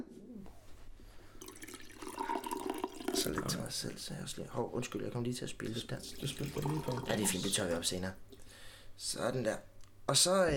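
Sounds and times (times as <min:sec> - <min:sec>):
coffee being poured into a cup in a student-residence room: 0:01.4 - 0:04.2, 0:04.8 - 0:08.0
speech: 0:03.2 - 0:08.3, 0:09.0 - 0:10.5.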